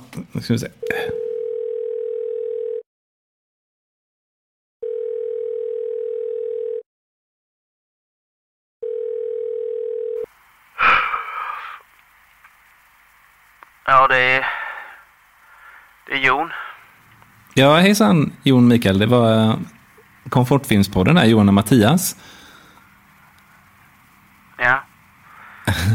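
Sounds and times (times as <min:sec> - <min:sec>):
speech: 0:00.4 - 0:01.2, 0:17.6 - 0:22.4, 0:25.7 - 0:25.9
telephone ringback tone while placing a call: 0:00.8 - 0:02.8, 0:04.8 - 0:06.8, 0:08.8 - 0:10.3
faint telephone line hiss: 0:10.2 - 0:25.9
laughter: 0:25.6 - 0:25.9.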